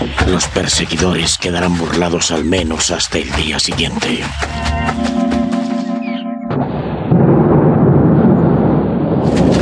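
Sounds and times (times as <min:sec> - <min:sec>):
speech: 0:00.3 - 0:05.2
loud crash of thunder in a thunderstorm: 0:06.5 - 0:09.6.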